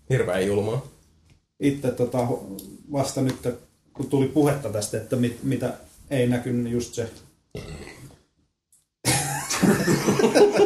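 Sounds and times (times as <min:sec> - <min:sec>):
speech: 0:00.1 - 0:00.9, 0:01.6 - 0:07.9, 0:09.8 - 0:10.6
loud burps: 0:07.6 - 0:08.1
laughter: 0:09.1 - 0:10.6.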